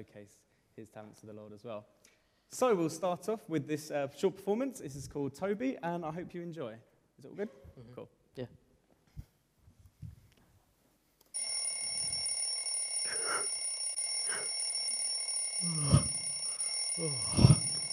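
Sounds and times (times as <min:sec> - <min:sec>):
speech: 0:00.0 - 0:08.6, 0:15.6 - 0:16.0, 0:17.0 - 0:17.5
cheap blue plastic alarm clock ringing with high-pitched electronic tone: 0:11.4 - 0:17.9.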